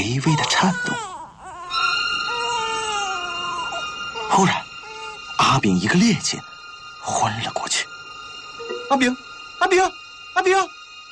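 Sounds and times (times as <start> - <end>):
speech: 0.0 - 1.0, 4.4 - 4.6, 5.6 - 7.9, 8.9 - 10.8
infant crying: 0.3 - 5.4.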